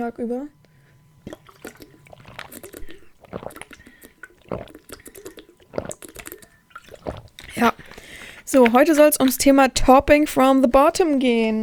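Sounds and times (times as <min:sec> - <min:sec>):
speech: 0:00.0 - 0:00.6, 0:08.5 - 0:11.6
person drinking a big gulp of water: 0:01.1 - 0:09.5.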